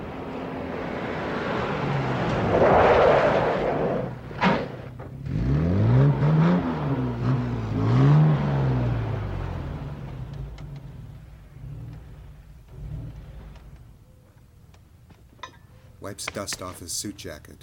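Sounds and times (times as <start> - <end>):
convertible car engine revving while driving into a service station: 0.0 - 14.0
road and wind noise: 0.0 - 17.6
speech: 16.2 - 17.6.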